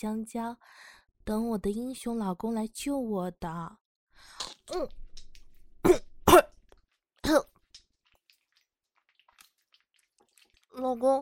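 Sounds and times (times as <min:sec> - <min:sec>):
speech: 0:00.0 - 0:05.0, 0:10.8 - 0:11.1
woman coughing after choking on a large piece of banana: 0:05.8 - 0:06.5.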